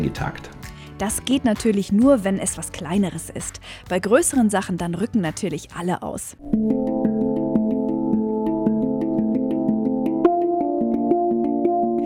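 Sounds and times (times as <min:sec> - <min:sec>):
speech: 0:00.1 - 0:06.9
handpan notes: 0:06.4 - 0:12.0.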